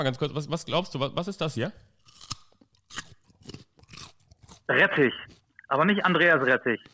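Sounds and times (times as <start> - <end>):
speech: 0.0 - 2.0, 4.7 - 6.9
raw carrot being bitten and chewed: 2.0 - 5.5.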